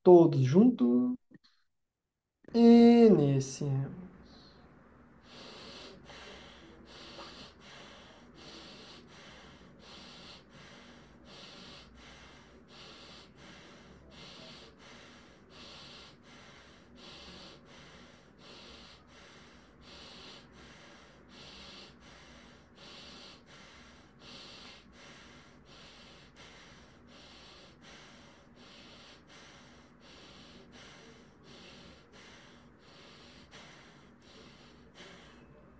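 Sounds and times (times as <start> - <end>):
speech: 0.0 - 1.2, 2.5 - 4.0
rapid forceful nasal breathing, breath of fire: 4.2 - 35.7.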